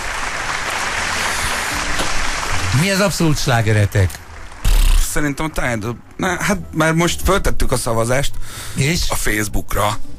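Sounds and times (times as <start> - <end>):
audience applause: 0.0 - 5.5
speech: 2.8 - 4.2, 5.2 - 10.1.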